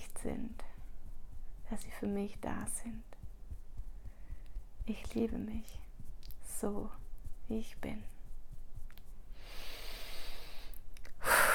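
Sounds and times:
speech: 0:00.2 - 0:00.7, 0:01.7 - 0:03.2, 0:04.8 - 0:05.8, 0:06.6 - 0:08.2
slow deep breathing in and out: 0:03.9 - 0:04.6, 0:09.3 - 0:11.5.

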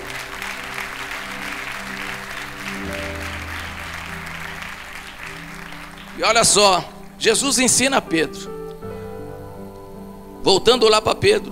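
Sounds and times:
audience applauding: 0:00.0 - 0:07.8
sustained organ or keyboard chords: 0:00.0 - 0:11.5
speech: 0:06.2 - 0:08.6, 0:10.4 - 0:11.5.

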